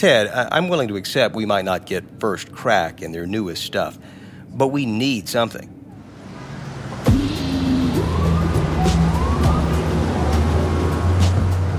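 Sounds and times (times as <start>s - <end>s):
speech: 0.0s - 5.8s
busy street traffic rumble in a New York City square: 0.0s - 11.7s
siren-like sweeping tone: 6.0s - 11.7s.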